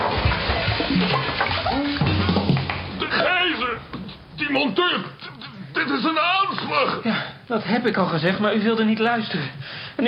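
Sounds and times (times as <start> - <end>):
water running from a tap as hands are washed: 0.1 - 2.9
speech: 4.5 - 5.1, 5.8 - 10.0.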